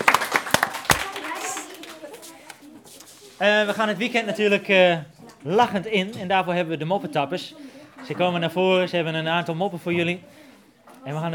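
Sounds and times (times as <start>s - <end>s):
scattered applause for quizmasters: 0.0s - 2.6s
murmur of voices: 0.9s - 11.3s
speech: 3.4s - 10.4s, 11.0s - 11.3s.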